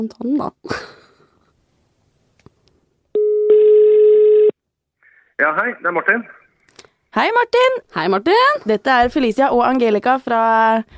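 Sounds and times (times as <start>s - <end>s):
speech: 0.0s - 1.0s, 5.4s - 6.4s, 7.1s - 10.9s
electronic ringback tone from an outgoing phone call: 3.2s - 4.5s.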